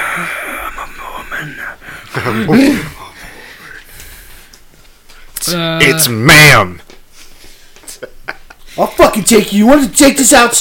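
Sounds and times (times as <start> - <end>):
voice imitating labored raspy breathing inside a mask: 0.0 - 3.8
speech: 0.2 - 0.4, 2.2 - 2.9, 5.5 - 6.8, 8.8 - 10.5.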